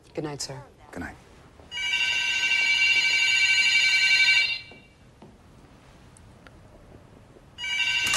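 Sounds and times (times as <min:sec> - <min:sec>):
speech: 0:00.2 - 0:01.3
electric telephone bell ringing: 0:01.7 - 0:04.8, 0:07.6 - 0:08.1.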